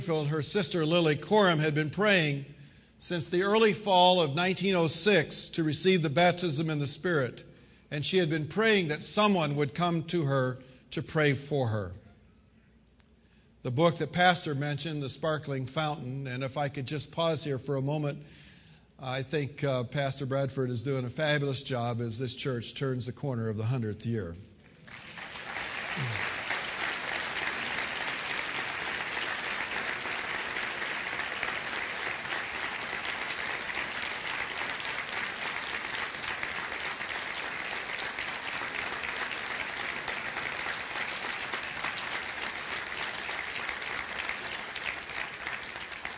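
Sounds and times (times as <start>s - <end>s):
speech: 0.0s - 12.0s, 13.6s - 18.4s, 19.0s - 24.5s, 26.0s - 26.4s
audience applauding: 24.8s - 46.1s.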